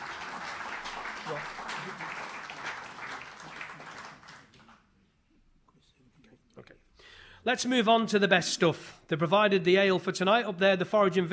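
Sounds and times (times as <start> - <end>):
crowd applauding: 0.0 - 4.9
speech: 1.3 - 2.2, 7.4 - 11.3.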